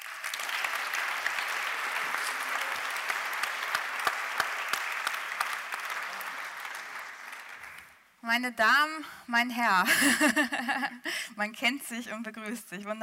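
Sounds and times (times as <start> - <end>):
crowd clapping: 0.0 - 8.1
speech: 8.3 - 13.0.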